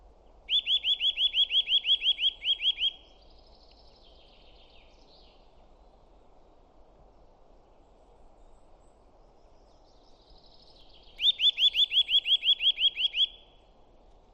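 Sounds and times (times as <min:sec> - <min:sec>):
Eurasian nuthatch singing rapid clear repeated whistles: 0:00.5 - 0:03.3, 0:10.5 - 0:13.6.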